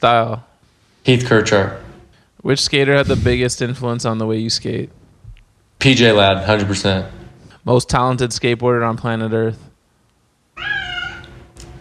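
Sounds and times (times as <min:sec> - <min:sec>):
speech: 0:00.0 - 0:01.8, 0:02.4 - 0:05.0, 0:05.8 - 0:09.7
cat meowing: 0:10.6 - 0:11.4.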